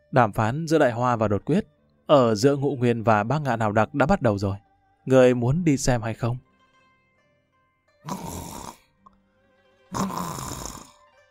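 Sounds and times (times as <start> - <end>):
speech: 0.1 - 6.5, 8.0 - 8.3
sleeping man snoring softly: 8.1 - 8.9, 9.9 - 11.0.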